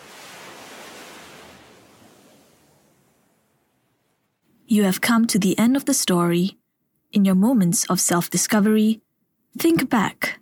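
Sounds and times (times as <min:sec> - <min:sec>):
ocean waves breaking on the shore: 0:00.0 - 0:04.4
speech: 0:04.7 - 0:10.4.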